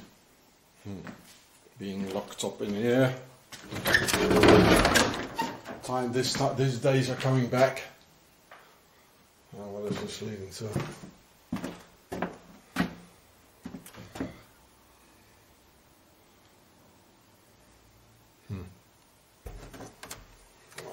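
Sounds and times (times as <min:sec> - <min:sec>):
speech: 0:01.8 - 0:03.3, 0:04.2 - 0:05.0, 0:05.9 - 0:07.9, 0:10.2 - 0:11.7
doors banging open and shut: 0:03.6 - 0:05.9, 0:19.5 - 0:20.3.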